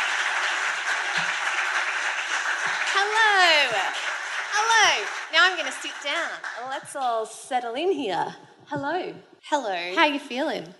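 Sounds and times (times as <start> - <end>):
audience applause for a performer walking out at a live show: 0.0 - 6.8
speech: 3.6 - 10.7.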